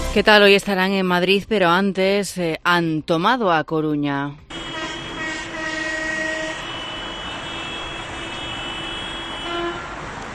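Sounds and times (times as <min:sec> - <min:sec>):
speech: 0:00.1 - 0:04.5
long droning air horns blaring: 0:04.5 - 0:10.1
tractors rumbling at farmers' protest: 0:04.5 - 0:10.3.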